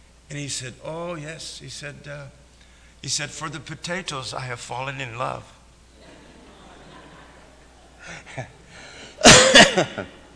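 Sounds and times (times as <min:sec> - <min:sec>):
speech: 0:00.3 - 0:02.4, 0:03.0 - 0:05.6, 0:08.1 - 0:08.6, 0:09.8 - 0:10.2
laughter: 0:06.0 - 0:10.3
loud harsh cough: 0:09.1 - 0:10.1.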